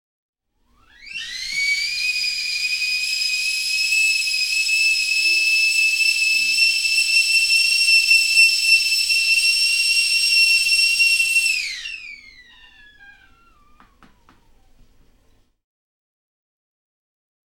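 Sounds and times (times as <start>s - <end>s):
kettle whistling: 0.7s - 15.0s.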